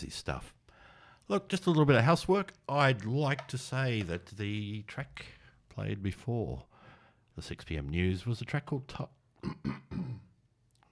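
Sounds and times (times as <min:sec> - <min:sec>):
speech: 0:00.0 - 0:00.6, 0:01.3 - 0:06.7, 0:07.4 - 0:09.8
throat clearing: 0:09.4 - 0:10.4.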